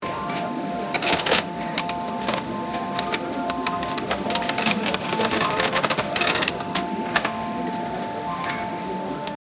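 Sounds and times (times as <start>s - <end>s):
cash register during a sale: 0.3s - 8.7s.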